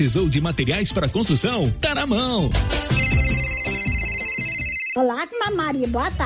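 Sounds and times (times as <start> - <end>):
speech: 0.0 - 3.5, 5.0 - 6.2
steady high chime: 3.0 - 5.0
telephone ringing with a bright electronic tone: 3.0 - 5.0.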